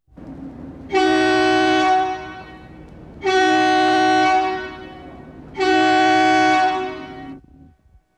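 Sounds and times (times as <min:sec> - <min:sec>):
diesel train horn: 0:00.2 - 0:07.9.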